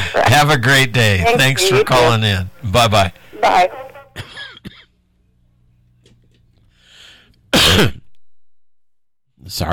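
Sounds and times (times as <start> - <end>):
speech: 0.3 - 4.3, 7.8 - 8.0, 9.4 - 9.7
person having a short coughing fit: 4.2 - 5.0, 7.6 - 8.1.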